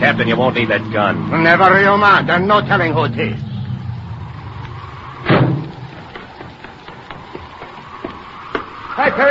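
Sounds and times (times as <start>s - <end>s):
speech: 0.0s - 3.5s, 9.0s - 9.2s
car engine rumbling as a car arrives: 0.0s - 9.2s
heavy car door slamming: 5.2s - 5.7s.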